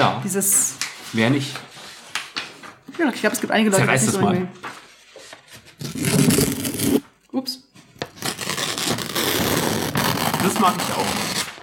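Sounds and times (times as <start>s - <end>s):
speech: 0.0s - 1.8s, 3.0s - 4.8s, 7.4s - 7.6s, 10.6s - 11.2s
paper rustling: 0.5s - 7.2s, 7.8s - 11.6s.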